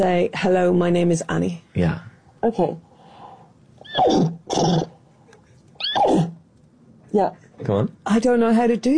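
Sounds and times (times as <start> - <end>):
speech: 0.0 - 2.9, 4.0 - 4.9, 7.1 - 8.9
person imitating a horse neigh: 3.8 - 4.9, 5.8 - 6.3.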